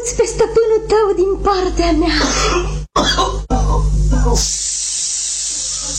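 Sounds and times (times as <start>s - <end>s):
speech: 0.2s - 4.6s
harsh coughing bursts: 2.1s - 4.5s
steady airy hiss: 4.4s - 5.9s.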